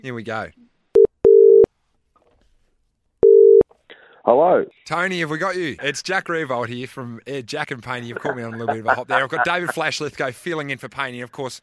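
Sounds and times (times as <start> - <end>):
speech: 0.0 - 0.6, 4.2 - 11.6
telephone ringback tone on an outgoing call: 1.0 - 1.7, 3.2 - 3.6
laughter: 8.0 - 9.8.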